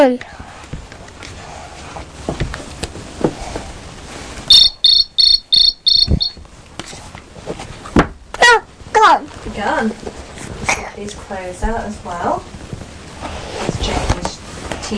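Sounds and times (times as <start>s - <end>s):
speech: 0.0s - 0.5s, 9.8s - 10.2s, 11.0s - 12.6s
rustling: 0.3s - 8.2s, 8.8s - 14.9s
cricket chirping in high-pitched bursts: 4.5s - 6.4s.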